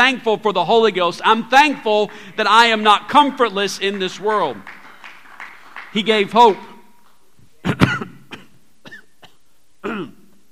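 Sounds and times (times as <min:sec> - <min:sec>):
speech: 0:00.1 - 0:04.8, 0:05.9 - 0:06.7
person coughing harshly: 0:07.6 - 0:10.3.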